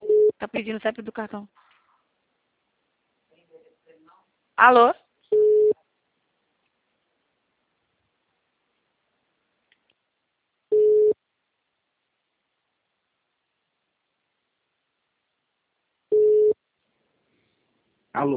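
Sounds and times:
telephone busy tone after a dropped call: 0:00.0 - 0:00.4, 0:05.3 - 0:05.8, 0:10.7 - 0:11.2, 0:16.1 - 0:16.6
speech: 0:00.5 - 0:01.8, 0:04.6 - 0:05.8, 0:18.1 - 0:18.3.

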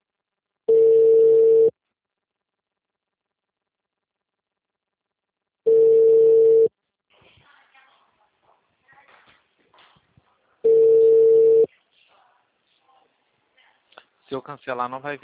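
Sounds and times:
telephone ringing tone beeps while calling someone: 0:00.7 - 0:01.7, 0:05.7 - 0:06.7, 0:10.6 - 0:11.7
speech: 0:14.3 - 0:15.2.

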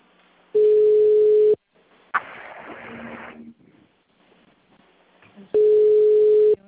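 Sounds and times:
noisy hiss: 0:00.0 - 0:06.6
telephone ringing tone beeps on a group phone call: 0:00.6 - 0:01.6, 0:05.6 - 0:06.6.

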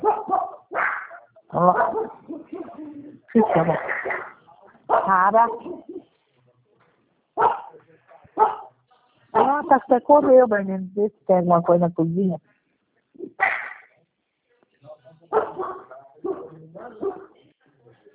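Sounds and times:
dog barking: 0:00.0 - 0:02.7, 0:04.9 - 0:06.1, 0:07.4 - 0:07.8, 0:08.4 - 0:09.7, 0:15.3 - 0:17.4
speech: 0:03.4 - 0:04.0, 0:05.3 - 0:05.7, 0:09.8 - 0:12.5.

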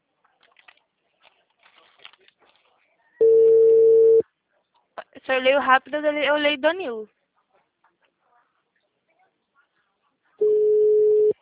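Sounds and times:
telephone ringback tone while a call is placed: 0:03.2 - 0:04.2, 0:10.4 - 0:11.4
speech: 0:05.3 - 0:07.2.

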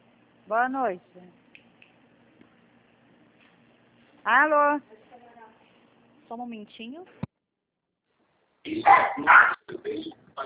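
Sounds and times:
speech: 0:00.5 - 0:01.4, 0:04.2 - 0:05.0, 0:06.3 - 0:07.3, 0:08.6 - 0:10.4
dog barking: 0:08.8 - 0:09.6.

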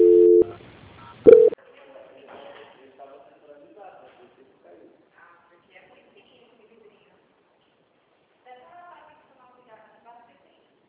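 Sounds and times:
telephone tones during a call transfer: 0:00.0 - 0:00.5, 0:01.3 - 0:01.6.

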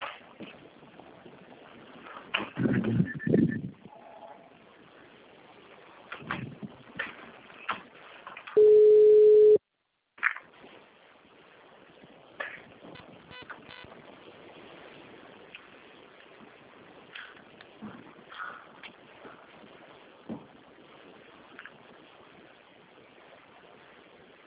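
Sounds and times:
low noise: 0:00.0 - 0:24.4
telephone ringback tone while calling someone: 0:08.6 - 0:09.6.

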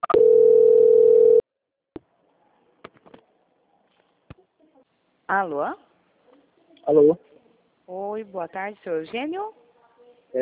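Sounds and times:
steady telephone tone while a call is transferred: 0:00.0 - 0:01.4
speech: 0:05.3 - 0:05.9, 0:06.9 - 0:07.3, 0:07.9 - 0:09.6.

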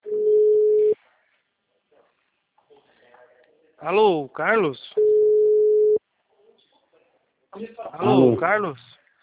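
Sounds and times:
telephone tone after a dropped call: 0:00.0 - 0:01.0, 0:05.0 - 0:06.0
speech: 0:03.8 - 0:05.0, 0:07.6 - 0:08.9.

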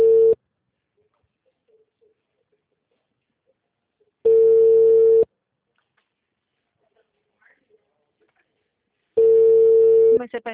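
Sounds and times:
ringing tone of an outgoing mobile phone call: 0:00.0 - 0:00.4, 0:04.2 - 0:05.3, 0:09.2 - 0:10.2
speech: 0:10.2 - 0:10.5.

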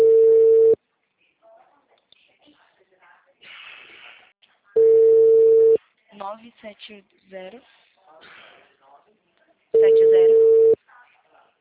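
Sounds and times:
telephone line tone of a call waiting to be answered: 0:00.0 - 0:00.8, 0:04.8 - 0:05.8, 0:09.8 - 0:10.8
speech: 0:06.4 - 0:08.4.

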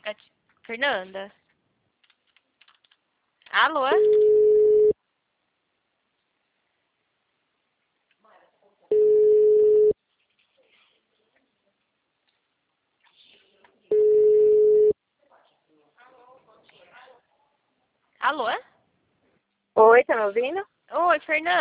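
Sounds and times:
speech: 0:00.1 - 0:01.4, 0:03.6 - 0:04.3, 0:18.2 - 0:18.7, 0:19.8 - 0:21.5
telephone busy tone after a dropped call: 0:04.0 - 0:05.0, 0:08.9 - 0:10.0, 0:13.9 - 0:14.9.

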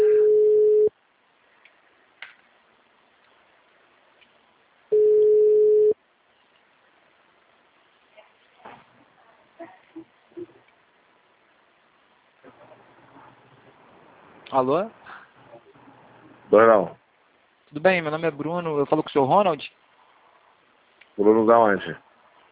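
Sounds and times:
telephone ringback tone on an outgoing call: 0:00.0 - 0:00.9, 0:04.9 - 0:06.0
faint clicks and rustles: 0:01.4 - 0:04.7, 0:06.2 - 0:16.4
speech: 0:14.6 - 0:15.0, 0:16.5 - 0:17.0, 0:17.7 - 0:19.8, 0:21.2 - 0:22.0.

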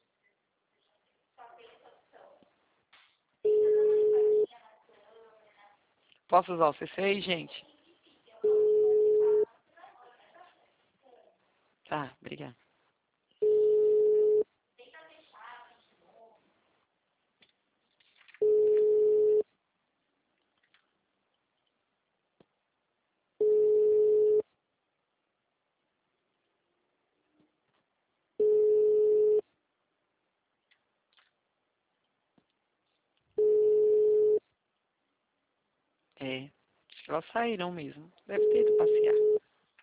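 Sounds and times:
ringback tone of an unanswered telephone call: 0:03.5 - 0:04.5, 0:08.4 - 0:09.4, 0:13.4 - 0:14.4, 0:18.4 - 0:19.4, 0:23.4 - 0:24.4, 0:28.4 - 0:29.4, 0:33.4 - 0:34.4, 0:38.4 - 0:39.4
speech: 0:06.3 - 0:07.7, 0:37.2 - 0:39.4.

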